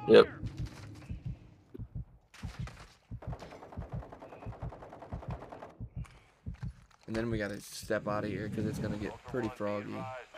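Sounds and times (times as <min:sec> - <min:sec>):
speech: 0:00.1 - 0:00.6, 0:07.1 - 0:10.3
gunfire in a video game: 0:02.4 - 0:06.7.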